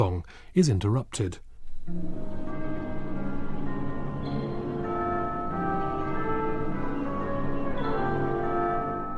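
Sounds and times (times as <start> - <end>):
speech: 0.0 - 2.6
distant bells: 1.6 - 9.1
sustained orchestral music: 1.9 - 9.1.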